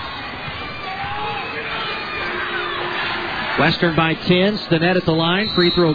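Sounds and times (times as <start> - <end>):
scattered shouts from the crowd: 0.0 - 4.3
home crowd booing the officials in an arena: 0.0 - 5.9
speech: 3.6 - 5.9.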